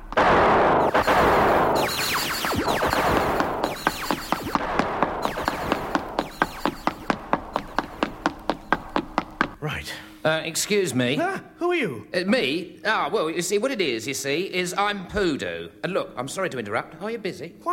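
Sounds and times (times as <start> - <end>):
gunfire covering a run: 0.1 - 8.3
hissing noise: 0.8 - 9.5
speech: 10.2 - 17.7.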